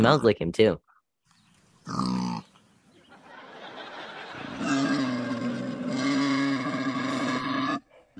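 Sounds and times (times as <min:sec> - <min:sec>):
warthog snorting, grunting and squealing: 0:01.9 - 0:02.5, 0:04.6 - 0:08.1
laughter: 0:03.1 - 0:05.2.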